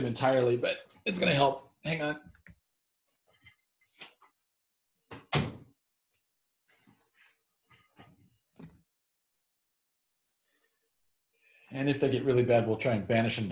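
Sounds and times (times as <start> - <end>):
speech: 0.0 - 2.4, 11.7 - 13.5
office door closed with a solid thud: 5.1 - 5.7.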